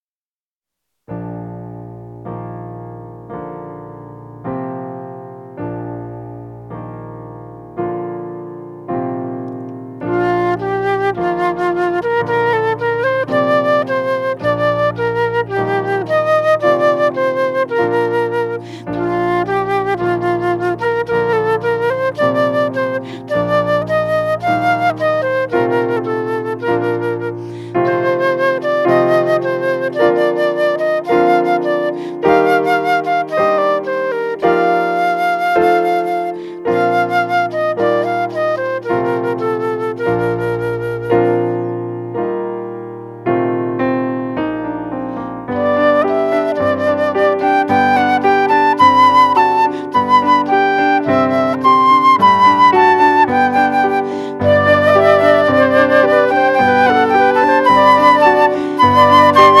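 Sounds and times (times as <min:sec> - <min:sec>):
piano: 0:00.8 - 0:59.5
two flutes: 0:10.0 - 0:42.6, 0:44.9 - 0:59.5.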